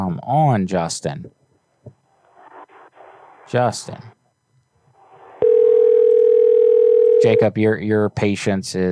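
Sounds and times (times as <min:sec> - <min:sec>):
speech: 0:00.2 - 0:01.4, 0:03.5 - 0:04.2, 0:07.2 - 0:08.9
ringback tone on an outgoing phone call: 0:05.4 - 0:07.6.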